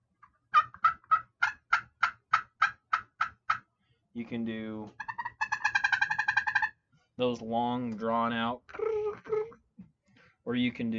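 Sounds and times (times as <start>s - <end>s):
turkey clucks made with a spring turkey hunting call: 0.2s - 3.7s, 4.9s - 6.8s, 8.7s - 9.6s
speech: 4.2s - 5.0s, 7.2s - 9.6s, 10.5s - 10.9s.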